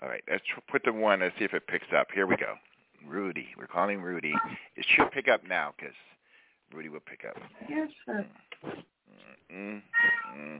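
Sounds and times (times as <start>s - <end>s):
speech: 0.1s - 10.5s
cat meowing for food in the morning: 9.9s - 10.5s.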